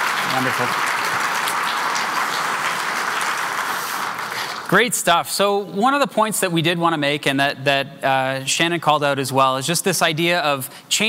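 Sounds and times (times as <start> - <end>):
audience applauding for a presenter: 0.0 - 4.9
speech: 0.4 - 1.1, 4.7 - 11.0.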